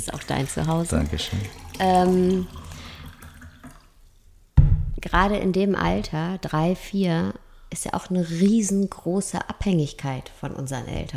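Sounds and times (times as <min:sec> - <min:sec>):
speech: 0:00.0 - 0:02.6, 0:05.1 - 0:11.1
water being poured into a glass: 0:00.0 - 0:04.3.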